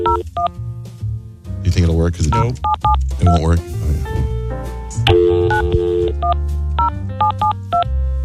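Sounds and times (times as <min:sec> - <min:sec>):
telephone keypad dialing tones: 0:00.0 - 0:00.3, 0:02.3 - 0:03.4, 0:05.1 - 0:07.9
speech: 0:01.7 - 0:04.3.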